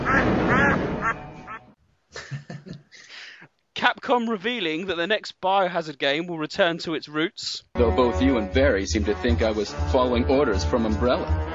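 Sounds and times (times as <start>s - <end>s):
ducks quacking: 0.0s - 1.8s
speech: 3.8s - 11.5s.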